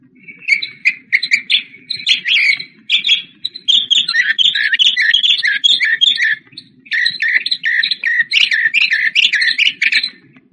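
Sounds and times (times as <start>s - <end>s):
mockingbird singing: 0.2s - 10.2s.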